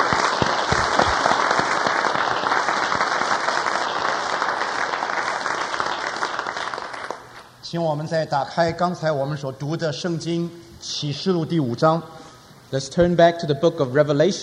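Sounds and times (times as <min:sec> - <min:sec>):
congregation applauding: 0:00.0 - 0:07.5
speech: 0:07.7 - 0:14.4.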